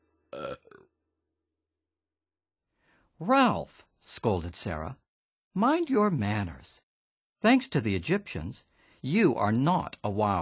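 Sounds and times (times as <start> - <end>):
loud deep burp: 0.3 - 1.0
speech: 3.2 - 5.0, 5.6 - 6.8, 7.4 - 10.4.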